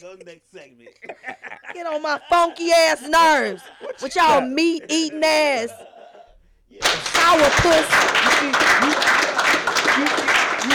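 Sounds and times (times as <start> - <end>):
speech: 0.0 - 5.9, 6.7 - 10.7
people laughing: 0.7 - 10.7
loud sharp hand claps: 6.8 - 10.7.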